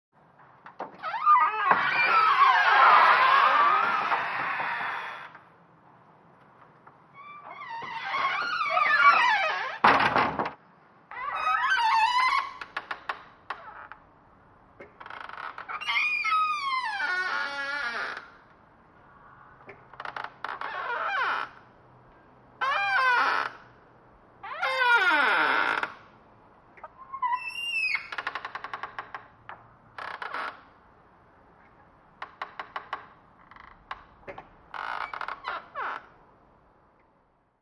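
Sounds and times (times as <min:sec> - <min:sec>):
medium wooden door creaking: 0:00.6 - 0:05.5, 0:07.2 - 0:14.1, 0:14.8 - 0:18.5, 0:19.6 - 0:21.6, 0:22.6 - 0:23.7, 0:24.4 - 0:26.1, 0:26.8 - 0:30.7, 0:32.2 - 0:36.2.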